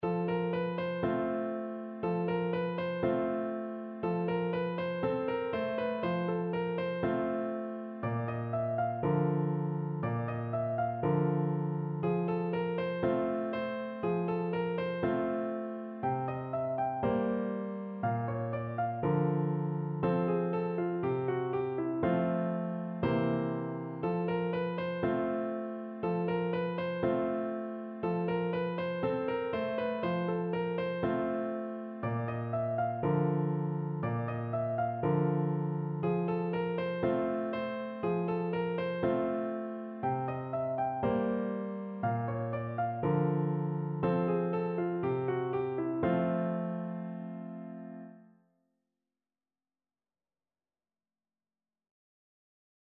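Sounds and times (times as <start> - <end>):
blues piano accompaniment in F major: 0.0 - 48.2.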